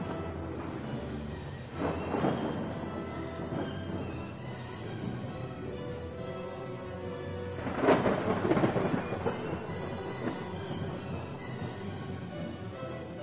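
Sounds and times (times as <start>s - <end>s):
thunder from a lightning strike: 0.0s - 13.2s.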